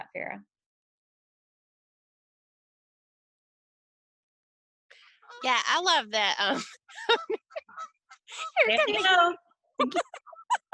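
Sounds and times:
speech: 0:00.2 - 0:00.6, 0:05.4 - 0:10.2
geese honking: 0:05.2 - 0:05.8, 0:06.9 - 0:09.2
laughter: 0:06.4 - 0:10.7.

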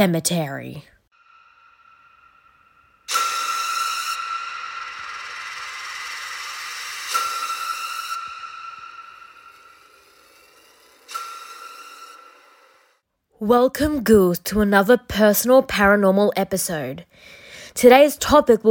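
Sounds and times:
speech: 0:00.0 - 0:00.9, 0:13.4 - 0:18.6
steam train hissing: 0:01.3 - 0:13.0.

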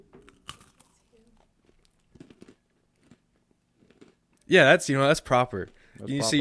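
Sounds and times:
person biting and chewing a crunchy snack: 0:00.3 - 0:04.5
speech: 0:04.5 - 0:06.3.

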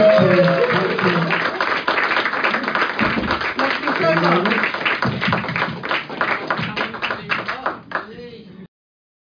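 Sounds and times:
audience applauding: 0:00.0 - 0:08.1.

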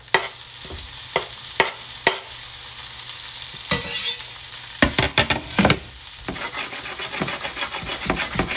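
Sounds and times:
green onions sizzling in melted butter in a pan: 0:00.0 - 0:08.5
utensil scraping a pan while stirring green onions: 0:03.6 - 0:04.3, 0:05.2 - 0:08.5.

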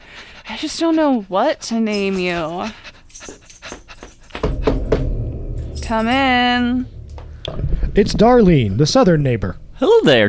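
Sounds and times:
puppy breathy panting: 0:00.0 - 0:04.9
speech: 0:00.6 - 0:03.4, 0:05.9 - 0:07.0, 0:08.0 - 0:10.2.

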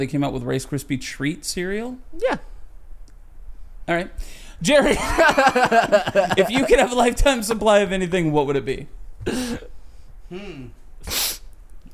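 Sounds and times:
speech: 0:00.0 - 0:02.5, 0:03.9 - 0:09.6, 0:10.3 - 0:11.2
laughter: 0:04.8 - 0:07.5
person sniffling loudly into a microphone: 0:09.3 - 0:11.6.

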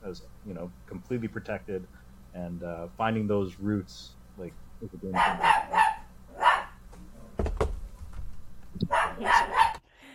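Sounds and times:
speech: 0:00.0 - 0:05.8
dog barking: 0:05.2 - 0:06.8, 0:08.8 - 0:09.8
knock or thump: 0:07.4 - 0:07.8.

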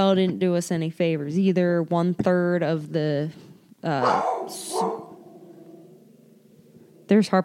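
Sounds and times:
speech: 0:00.0 - 0:05.0, 0:07.1 - 0:07.4
female dog barking: 0:04.0 - 0:05.4.

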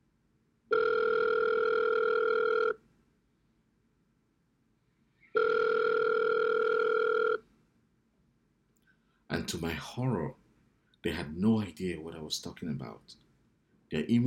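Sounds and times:
phone call ringing tones: 0:00.7 - 0:02.8, 0:05.3 - 0:07.4
speech: 0:09.5 - 0:10.4, 0:11.0 - 0:13.3, 0:13.9 - 0:14.2.

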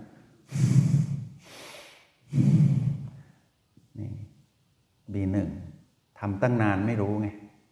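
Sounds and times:
person blowing nose forcefully: 0:00.5 - 0:03.0
speech: 0:06.3 - 0:07.5.

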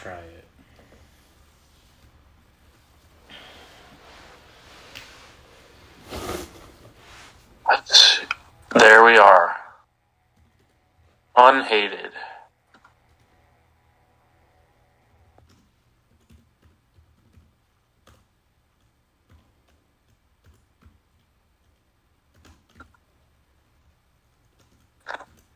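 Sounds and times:
speech: 0:00.0 - 0:00.6, 0:11.5 - 0:12.3
low hum: 0:00.0 - 0:25.5
keyboard typing: 0:15.4 - 0:23.0, 0:24.3 - 0:25.5.

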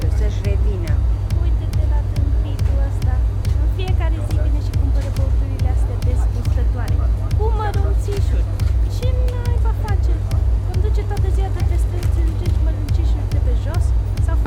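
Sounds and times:
loud chatter of several voices in a crowded shop queue: 0:00.0 - 0:14.4
steady low rumble: 0:00.0 - 0:14.4.

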